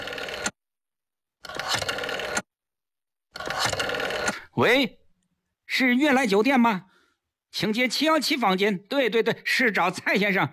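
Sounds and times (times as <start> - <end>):
telephone being dialed with mechanical whirring and clicking: 0.0 - 0.6, 1.4 - 2.5, 3.4 - 4.5
speech: 4.6 - 5.0, 5.7 - 6.9, 7.5 - 10.5.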